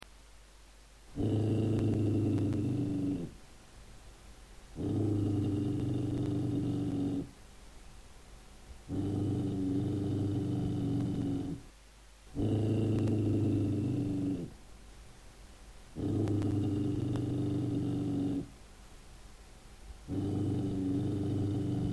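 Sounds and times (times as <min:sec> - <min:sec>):
threatening growl: 0:01.2 - 0:03.4, 0:04.8 - 0:07.3, 0:08.9 - 0:11.6, 0:12.4 - 0:14.6, 0:16.0 - 0:18.5, 0:20.1 - 0:21.9.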